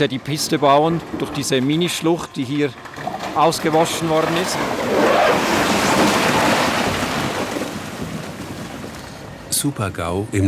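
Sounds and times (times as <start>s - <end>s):
speech: 0.0s - 6.2s, 9.6s - 10.4s
skip-load of stones pouring into a hole: 3.0s - 9.2s.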